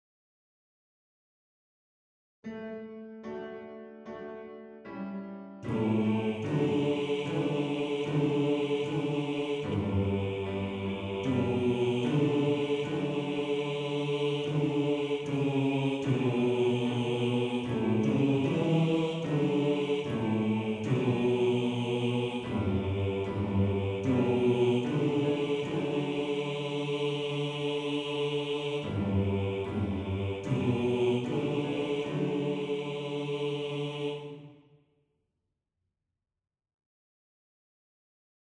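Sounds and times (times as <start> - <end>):
male choir singing a bass part in D: 5.7 - 34.6.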